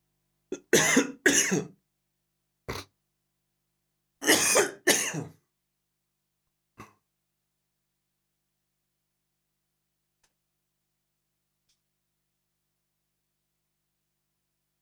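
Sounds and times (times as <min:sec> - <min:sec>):
harsh coughs: 0:00.6 - 0:01.8, 0:04.2 - 0:05.4
faint brief throat sound: 0:02.7 - 0:03.0.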